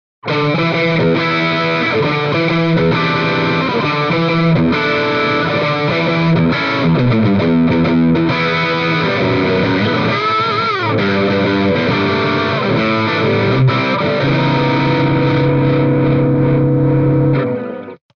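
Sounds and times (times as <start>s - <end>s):
distorted Stratocaster electric guitar through Celestion Greenback G12M speaker: 0.2s - 18.1s.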